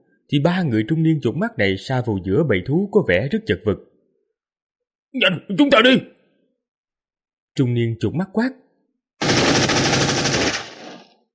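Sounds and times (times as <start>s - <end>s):
speech: 0.3s - 3.9s, 5.1s - 6.2s, 7.6s - 8.6s
machine gun firing as an audio-drama effect: 9.2s - 11.2s.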